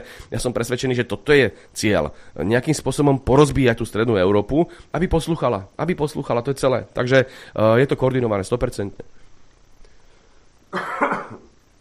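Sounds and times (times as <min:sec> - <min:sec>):
speech: 0:00.0 - 0:09.2, 0:10.7 - 0:11.0
cough: 0:10.7 - 0:11.6.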